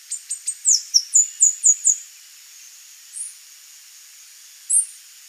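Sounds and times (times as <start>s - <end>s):
saffron-billed sparrow (Arremon flavirostris) song: 0.1s - 3.4s, 4.4s - 5.1s.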